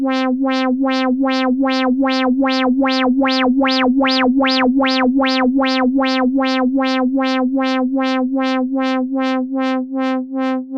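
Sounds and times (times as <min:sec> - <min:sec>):
synth filter cutoff sweep with LFO and rising resonance: 0:00.1 - 0:10.7.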